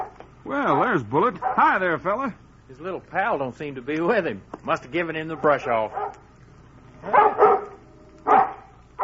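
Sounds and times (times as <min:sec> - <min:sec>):
dog barking excitedly: 0:00.0 - 0:01.7, 0:05.3 - 0:06.2, 0:07.0 - 0:09.0
speech: 0:00.5 - 0:06.2, 0:07.0 - 0:07.5.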